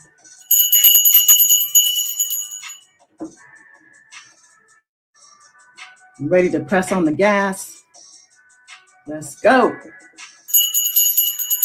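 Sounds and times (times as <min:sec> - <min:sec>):
bright high bells jingling: 0:00.4 - 0:02.8, 0:10.5 - 0:11.6
speech: 0:06.2 - 0:07.8, 0:09.1 - 0:10.0.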